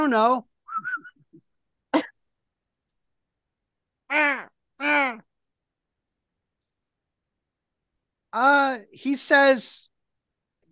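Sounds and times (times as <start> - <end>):
speech: 0.0 - 0.5, 4.1 - 5.3, 8.4 - 9.9
bird calling with harsh crow-like caws: 4.1 - 5.2.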